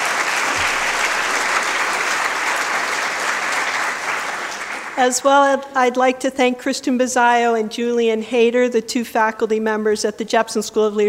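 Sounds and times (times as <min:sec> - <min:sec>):
room full of people applauding: 0:00.0 - 0:05.0
speech: 0:05.0 - 0:11.0.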